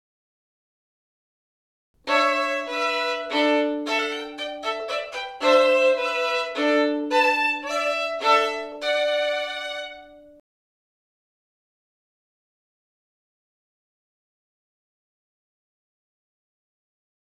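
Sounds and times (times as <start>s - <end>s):
violin bowed on multiple strings: 2.0s - 10.4s.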